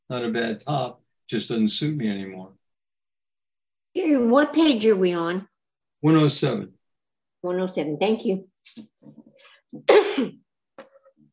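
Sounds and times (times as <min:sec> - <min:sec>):
speech: 0:00.1 - 0:02.6, 0:04.0 - 0:06.8, 0:07.4 - 0:10.4
sneeze: 0:09.8 - 0:10.4.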